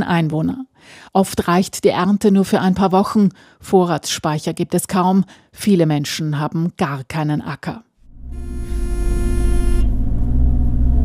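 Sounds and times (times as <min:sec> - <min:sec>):
speech: 0:00.0 - 0:08.5
high tonal whine: 0:08.0 - 0:11.0
road noise on a smooth paved bypass road: 0:08.0 - 0:11.0
jeep engine rumble on a smooth paved bypass road: 0:08.1 - 0:11.0.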